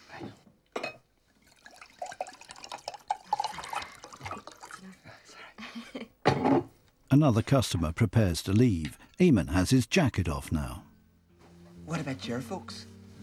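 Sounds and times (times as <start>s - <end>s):
drink pouring into a glass: 1.3s - 5.0s
speech: 7.1s - 10.9s, 11.9s - 12.9s.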